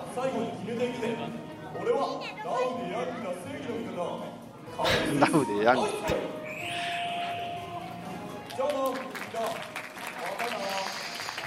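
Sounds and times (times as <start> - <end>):
speech: 0.2 - 6.8
audience applause at the end of a stage hero show: 8.4 - 11.4.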